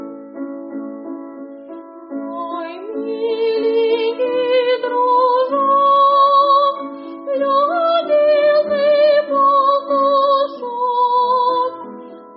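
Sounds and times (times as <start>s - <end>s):
opera duet singing: 2.3s - 11.9s.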